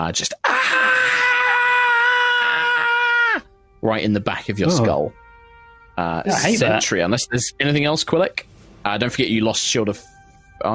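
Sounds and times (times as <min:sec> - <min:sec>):
speech: 0:00.0 - 0:00.8, 0:03.8 - 0:05.2, 0:06.0 - 0:10.7
loud piercing echoing creature scream: 0:00.5 - 0:03.4.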